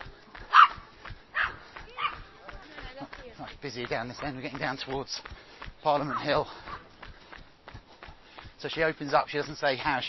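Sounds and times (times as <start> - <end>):
dogs barking and yipping: 0.5 - 2.3, 6.1 - 6.9
speech: 3.6 - 6.8, 8.6 - 10.0.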